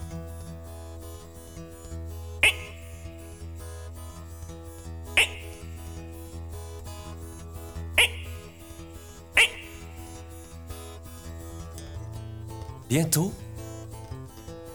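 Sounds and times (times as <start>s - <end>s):
sharp loud frog calls: 2.4s - 3.5s, 5.2s - 6.0s, 8.0s - 10.6s
steady low droning frog chorus: 2.4s - 3.8s, 5.2s - 6.4s, 8.0s - 11.0s
speech: 12.9s - 13.4s.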